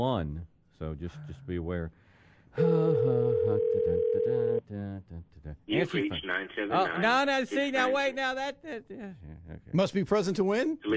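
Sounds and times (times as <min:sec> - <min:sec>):
speech: 0:00.0 - 0:10.9
steady telephone dial tone: 0:03.3 - 0:04.6.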